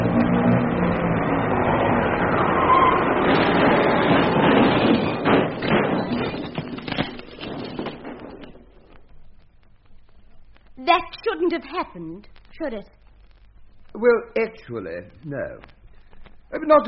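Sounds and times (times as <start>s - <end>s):
car engine running with a low hum: 0.0s - 5.7s
knocks, clunks and thuds of a car maneuvered into the curb: 3.3s - 6.8s
speech: 11.5s - 13.0s, 13.9s - 15.8s, 16.5s - 16.8s.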